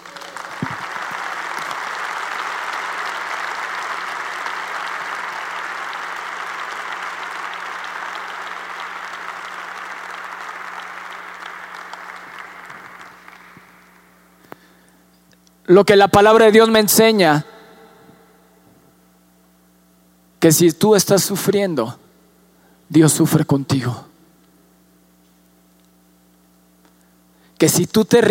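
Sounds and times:
large audience applause: 0:00.0 - 0:14.2
speech: 0:15.7 - 0:17.5, 0:20.4 - 0:22.0, 0:22.9 - 0:24.1, 0:27.6 - 0:28.2.

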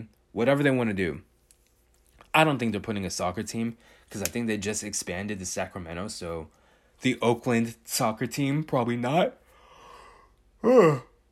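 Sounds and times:
speech: 0:00.0 - 0:01.3, 0:02.3 - 0:09.4, 0:10.6 - 0:11.1
person yawning: 0:09.9 - 0:11.2.

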